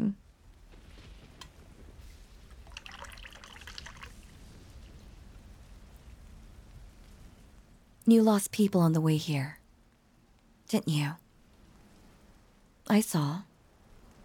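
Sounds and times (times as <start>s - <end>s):
steady patter: 0.0s - 14.2s
liquid pouring into a cup: 2.6s - 4.3s
speech: 8.1s - 9.6s, 10.7s - 11.2s, 12.9s - 13.5s.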